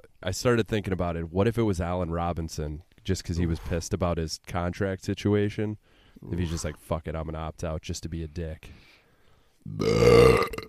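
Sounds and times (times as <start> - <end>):
speech: 0.2 - 8.9, 9.6 - 10.6
person burping: 9.7 - 10.6.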